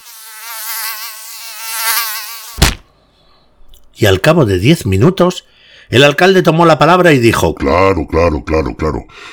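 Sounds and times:
fly buzzing with a wavering drone: 0.0 - 2.9
sharp smack: 2.6 - 2.9
speech: 4.0 - 9.3.

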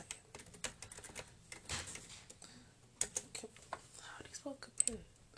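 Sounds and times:
typing on a computer keyboard: 0.0 - 2.1
speech: 4.4 - 5.1.

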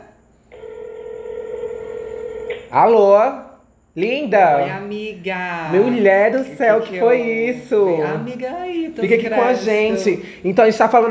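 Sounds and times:
steady electronic telephone tone while placing a call: 0.5 - 2.8
speech: 2.7 - 3.4, 4.0 - 11.0.

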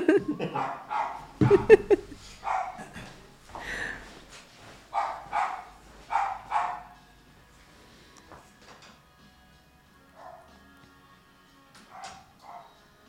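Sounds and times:
laughter: 0.0 - 4.0
puppy barking: 0.4 - 2.9, 4.9 - 7.0, 10.2 - 10.5, 11.9 - 12.8.

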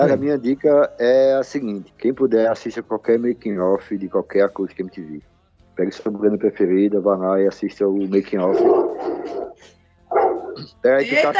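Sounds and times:
speech: 0.0 - 9.7, 10.6 - 11.3
dog barking: 8.4 - 10.7.

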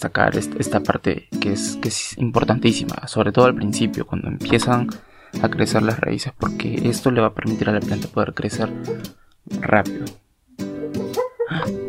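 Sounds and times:
speech: 0.0 - 10.2
small dog whimpering and crying in its sleep: 8.8 - 9.2, 10.8 - 11.8.

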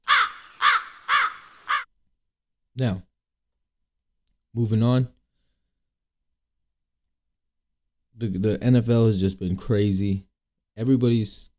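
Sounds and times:
crows cawing: 0.0 - 1.9
speech: 2.8 - 3.1, 4.5 - 5.2, 8.2 - 11.5.

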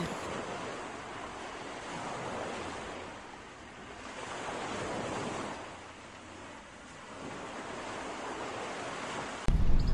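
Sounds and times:
ocean waves breaking on a beach on Guarumal Island in Sierpe de Osa: 0.0 - 9.9.

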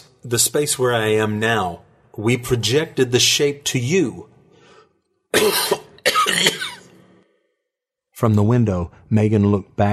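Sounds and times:
speech: 0.2 - 4.3, 5.3 - 5.8, 6.4 - 6.7, 8.2 - 9.9
painful harsh ragged cough: 5.3 - 7.0.

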